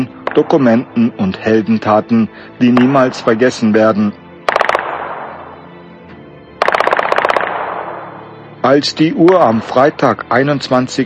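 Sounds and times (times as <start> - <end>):
automatic gunfire at the General Staff headquarters in Ankara during a coup attempt: 0.2 - 0.6, 4.5 - 5.5, 6.6 - 8.2
speech: 0.4 - 4.2, 8.7 - 11.0.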